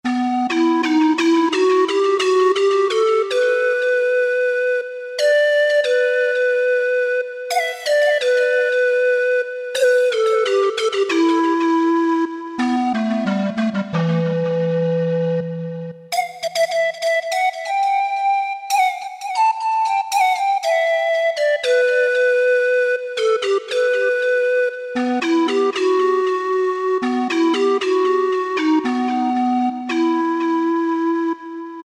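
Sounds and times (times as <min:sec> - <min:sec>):
solo pan flute on Generalmusic S2R: 0:00.0 - 0:31.8.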